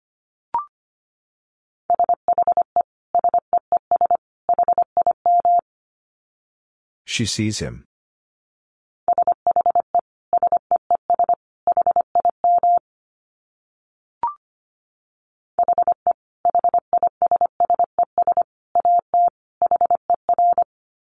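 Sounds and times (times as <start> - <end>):
fast Morse code beeps at 25 words per minute: 1.9 - 5.6, 9.1 - 12.8, 15.6 - 20.7
speech: 7.1 - 7.9.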